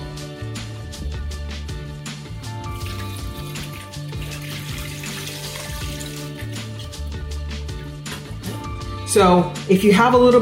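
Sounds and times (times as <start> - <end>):
chicken stock pouring into a pot: 2.6 - 7.1
speech: 9.2 - 10.4.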